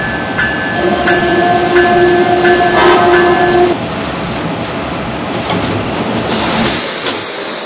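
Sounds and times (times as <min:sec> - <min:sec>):
passenger train rolling into a station: 0:00.0 - 0:07.6
passenger train horn blast: 0:00.7 - 0:03.8.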